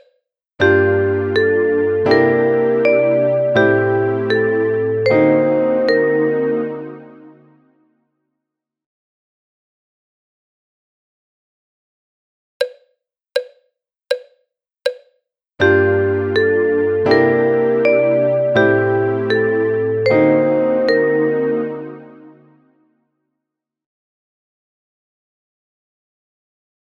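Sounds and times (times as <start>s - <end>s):
melodic dictation: 0.6s - 7.2s, 15.6s - 22.4s.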